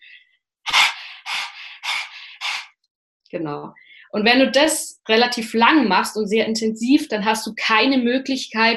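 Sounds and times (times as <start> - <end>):
person panting through the mouth as a breathing exercise: 0.0 - 2.8
speech: 3.3 - 8.7.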